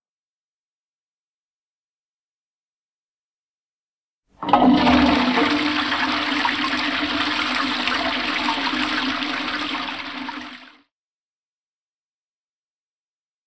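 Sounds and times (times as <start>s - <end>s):
toilet flushing: 4.4s - 10.8s.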